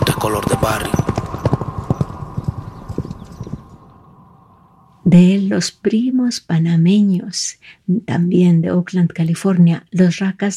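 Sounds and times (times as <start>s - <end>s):
horse hooves clip-clopping at a trot: 0.0s - 3.8s
speech: 0.2s - 1.1s, 5.1s - 10.5s
faint constant humming tone: 0.4s - 7.3s.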